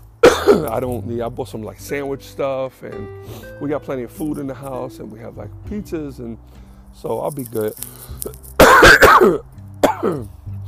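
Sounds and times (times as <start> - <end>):
rough harsh coughs: 0.2 - 0.8, 8.6 - 10.3
speech: 0.5 - 10.4.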